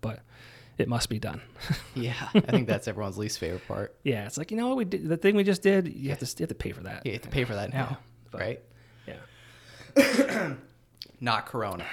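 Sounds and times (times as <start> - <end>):
speech: 0.0 - 9.3, 10.0 - 11.9
single harsh cough: 10.0 - 10.7.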